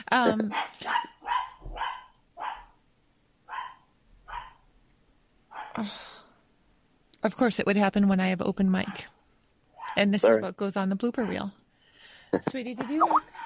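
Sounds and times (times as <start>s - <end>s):
speech: 0.1s - 1.1s, 5.8s - 6.1s, 7.2s - 9.2s, 10.0s - 11.6s, 12.3s - 13.3s
dog barking: 0.5s - 2.8s, 3.5s - 4.7s, 5.5s - 5.8s, 9.8s - 10.4s, 11.2s - 11.5s, 12.8s - 13.4s.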